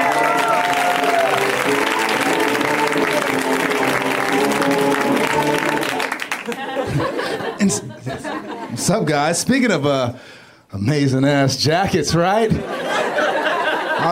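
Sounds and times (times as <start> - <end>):
audience applause welcoming a guest at a live show: 0.0 - 7.6
audience laughter at a live show: 5.8 - 9.2, 12.5 - 14.1
speech: 7.7 - 7.9, 8.8 - 12.8.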